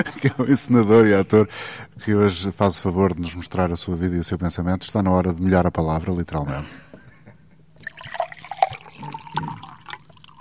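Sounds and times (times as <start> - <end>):
laughter: 0.0 - 0.9
speech: 0.0 - 6.9
water pouring into a glass: 7.8 - 10.3.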